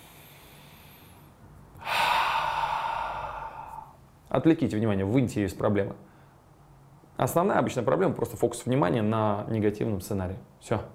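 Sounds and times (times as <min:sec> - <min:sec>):
person breathing out slowly to relieve stress: 0:00.0 - 0:04.0
speech: 0:04.3 - 0:06.1, 0:07.2 - 0:10.9.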